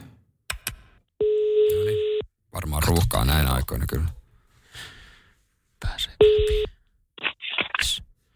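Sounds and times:
telephone ringing tone while calling a helpline: 0:01.2 - 0:02.2, 0:06.2 - 0:06.7
speech: 0:02.6 - 0:04.2.

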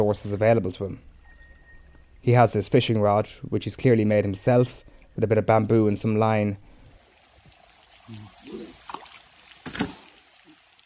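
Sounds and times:
speech: 0:00.0 - 0:01.1, 0:02.2 - 0:06.7, 0:08.1 - 0:08.8
steady hiss of flowing river water: 0:04.9 - 0:10.8
oars splashing through river water as a boat is rowed: 0:08.4 - 0:10.1.

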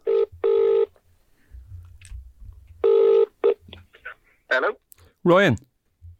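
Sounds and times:
telephone ringing tone on the line: 0:00.0 - 0:00.9, 0:02.8 - 0:03.6
speech: 0:04.6 - 0:05.7.

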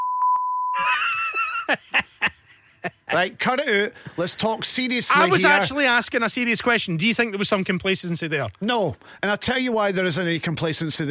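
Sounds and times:
high-pitched censor bleep tone: 0:00.0 - 0:00.8
burst of voices and laughter-like sounds: 0:00.8 - 0:03.3
speech: 0:01.7 - 0:02.1, 0:03.1 - 0:11.0.

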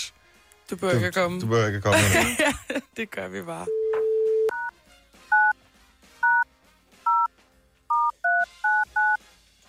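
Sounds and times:
speech: 0:00.7 - 0:03.8
crisp two-pitch touch-tone beeps of a phone number being dialed: 0:03.7 - 0:04.7, 0:07.9 - 0:09.2.

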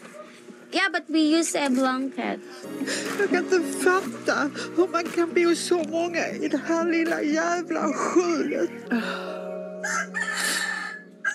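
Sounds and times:
speech: 0:00.7 - 0:09.3
rooster crowing: 0:09.8 - 0:11.3.

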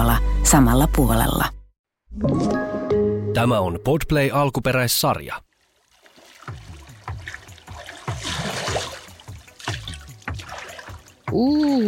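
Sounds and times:
speech: 0:00.4 - 0:02.5, 0:03.4 - 0:05.5, 0:11.3 - 0:11.8
water splashing: 0:05.5 - 0:11.8.

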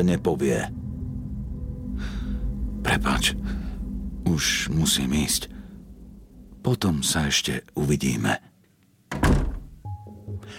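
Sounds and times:
speech: 0:00.0 - 0:00.8, 0:02.8 - 0:03.6, 0:04.3 - 0:05.5, 0:06.6 - 0:08.5
faint lingering hum: 0:00.0 - 0:08.6
door slamming shut with a heavy thud: 0:09.1 - 0:09.8.

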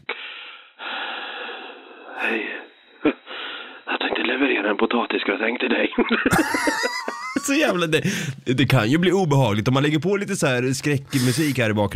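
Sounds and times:
person imitating heavy rasping breathing on a phone call: 0:00.1 - 0:03.9, 0:08.0 - 0:08.4
speech: 0:02.2 - 0:03.2, 0:04.6 - 0:11.9
laughter: 0:05.9 - 0:08.2.

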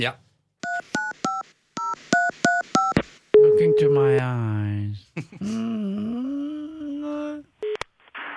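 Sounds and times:
speech: 0:00.0 - 0:00.2, 0:03.8 - 0:04.6, 0:05.2 - 0:06.0
DTMF touch-tone beeps of a phone number being dialed: 0:00.6 - 0:04.2.

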